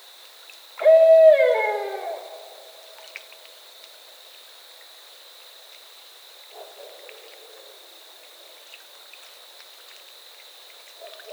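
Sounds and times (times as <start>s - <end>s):
Barred owl hooting: 0.8s - 2.6s.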